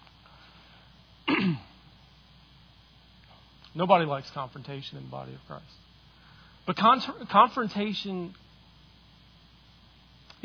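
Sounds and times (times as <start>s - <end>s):
sneeze: 1.3s - 1.7s
speech: 3.8s - 5.9s, 6.6s - 8.4s.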